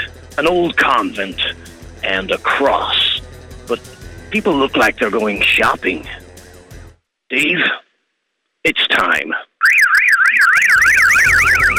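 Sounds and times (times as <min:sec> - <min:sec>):
speech: 0:00.4 - 0:03.1, 0:03.7 - 0:06.2, 0:07.3 - 0:07.8, 0:08.6 - 0:09.5
car alarm wailing: 0:09.6 - 0:11.7.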